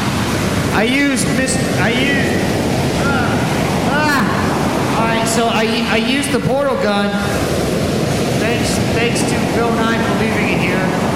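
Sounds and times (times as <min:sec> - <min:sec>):
ocean waves in the middle of the Atlantic Ocean on a rainy day: 0:00.0 - 0:11.1
wind at sea in the middle of the Atlantic Ocean aboard a boat: 0:00.0 - 0:11.1
speech: 0:00.8 - 0:03.2, 0:05.2 - 0:07.7, 0:08.6 - 0:11.0
warbling vocal sounds: 0:00.8 - 0:06.0.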